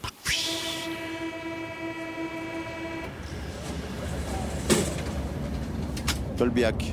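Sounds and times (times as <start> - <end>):
metro train motors whining: 0.3 - 6.3
metro train rumbling with low rolling clatter: 3.1 - 6.9
speech: 6.4 - 6.9.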